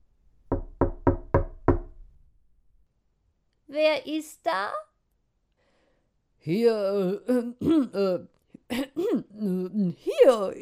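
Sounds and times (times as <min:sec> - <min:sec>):
firm knocks on the wooden door of a house: 0:00.5 - 0:02.0
speech: 0:03.7 - 0:04.9, 0:06.4 - 0:10.6.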